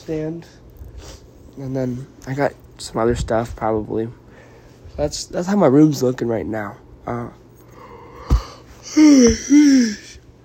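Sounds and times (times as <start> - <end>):
speech: 0.0 - 0.6, 1.6 - 4.2, 5.0 - 7.4, 8.9 - 10.0
person yawning with a soft falling groan: 7.8 - 10.2.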